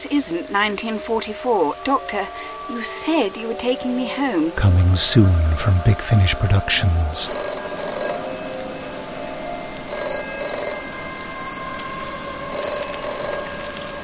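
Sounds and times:
speech: 0:00.0 - 0:07.5
old-style telephone ringing: 0:07.2 - 0:14.0.

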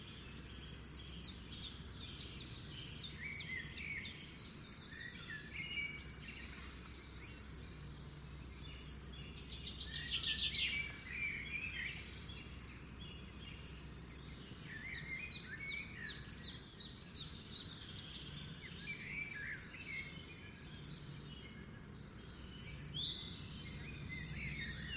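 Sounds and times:
morning birdsong from several birds in a forest: 0:00.0 - 0:24.9.

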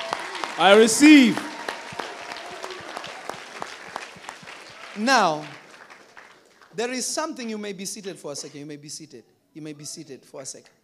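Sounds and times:
audience applauding during a sermon: 0:00.0 - 0:07.2
speech: 0:00.6 - 0:01.5, 0:05.0 - 0:05.6, 0:06.8 - 0:10.8.

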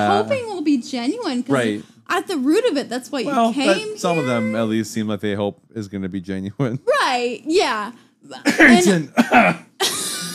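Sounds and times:
speech: 0:00.0 - 0:10.0
person coughing: 0:08.4 - 0:10.3.

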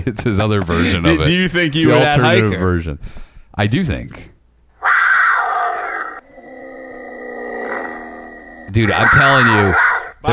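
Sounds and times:
speech: 0:00.0 - 0:04.3, 0:08.7 - 0:10.3
person imitating a mountain lion roar: 0:05.6 - 0:10.3.

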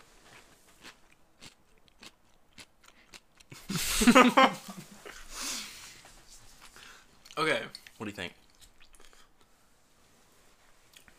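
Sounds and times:
crunchy sweet dill pickle being bitten and chewed: 0:00.3 - 0:03.7, 0:06.6 - 0:09.5
speech: 0:04.0 - 0:04.8, 0:07.4 - 0:08.4.

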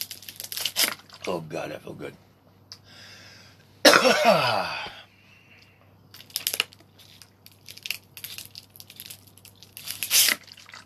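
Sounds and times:
plastic water bottle crinkling: 0:00.0 - 0:01.4, 0:06.1 - 0:10.8
speech: 0:01.2 - 0:02.3, 0:04.0 - 0:05.0.

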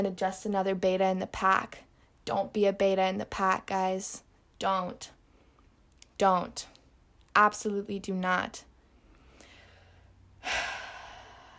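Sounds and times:
speech: 0:00.0 - 0:05.2, 0:06.2 - 0:06.7, 0:07.4 - 0:08.7, 0:10.4 - 0:10.8
deep breath exhale: 0:09.1 - 0:11.5.

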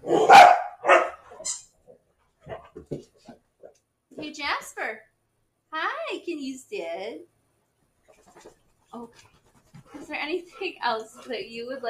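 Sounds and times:
dog barking: 0:00.0 - 0:01.5
dog yipping: 0:00.0 - 0:01.7
speech: 0:04.2 - 0:05.1, 0:05.7 - 0:07.3, 0:08.9 - 0:09.4, 0:10.0 - 0:11.8.

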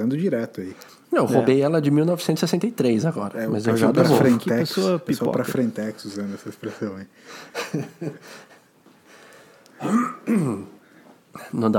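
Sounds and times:
speech: 0:00.0 - 0:08.5, 0:09.8 - 0:10.7, 0:11.4 - 0:11.7
laughter: 0:06.5 - 0:08.6
throat clearing: 0:09.8 - 0:10.8.

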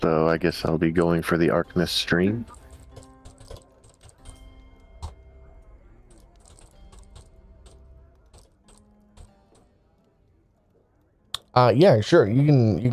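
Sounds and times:
speech: 0:00.0 - 0:02.6, 0:11.6 - 0:12.9
low murmuring background: 0:00.0 - 0:12.9
typing on a computer keyboard: 0:02.5 - 0:09.7.

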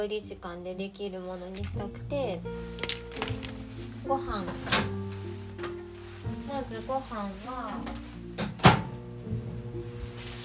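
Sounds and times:
speech: 0:00.0 - 0:05.1, 0:06.5 - 0:08.1
microwave oven humming while reheating frozen rice: 0:08.6 - 0:10.3.

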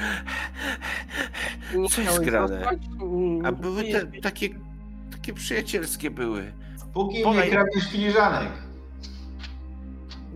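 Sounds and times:
rapid heavy panting: 0:00.0 - 0:01.9
speech: 0:01.7 - 0:04.7, 0:05.3 - 0:08.6.

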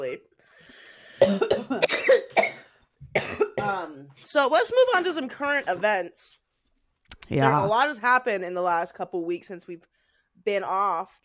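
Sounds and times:
speech: 0:01.2 - 0:01.9, 0:04.2 - 0:06.4, 0:07.3 - 0:11.2
person coughing into the microphone: 0:01.2 - 0:04.1.

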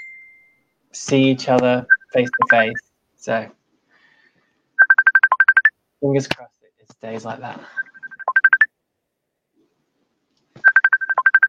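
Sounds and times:
speech: 0:00.9 - 0:03.6, 0:06.0 - 0:07.8
mobile phone electronic ringtone in a radio studio: 0:01.9 - 0:02.8, 0:04.8 - 0:05.7, 0:07.8 - 0:08.7, 0:10.6 - 0:11.4.

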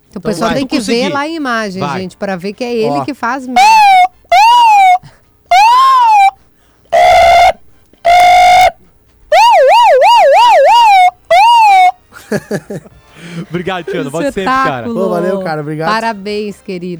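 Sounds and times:
speech: 0:00.1 - 0:04.1, 0:12.5 - 0:16.9
laughter: 0:00.4 - 0:02.0, 0:12.1 - 0:16.0
man imitating emergency vehicle sirens with his voice: 0:03.6 - 0:06.4, 0:07.0 - 0:12.1, 0:14.1 - 0:16.0.

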